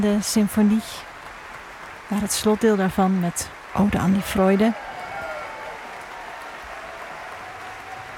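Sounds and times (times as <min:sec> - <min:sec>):
speech: 0:00.0 - 0:01.1, 0:02.1 - 0:04.9
large concert hall audience applause: 0:00.0 - 0:08.1.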